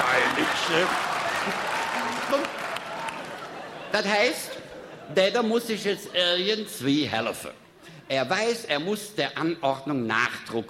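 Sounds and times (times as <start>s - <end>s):
audience applause: 0.0s - 3.9s
laughter: 0.0s - 6.4s
speech: 0.7s - 1.6s, 3.9s - 10.6s.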